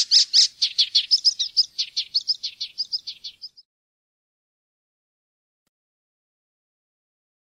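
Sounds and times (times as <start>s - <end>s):
Icterine warbler song phrase: 0.0s - 3.7s.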